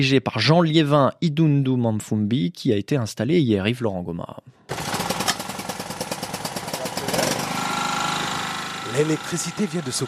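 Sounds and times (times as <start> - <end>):
speech: 0.0 - 4.9, 8.9 - 10.0
home power generator starting up during an electricity cut: 4.7 - 10.0.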